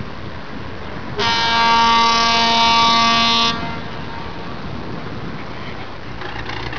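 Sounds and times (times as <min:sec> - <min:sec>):
diesel locomotive horn at departure: 0:01.2 - 0:04.8.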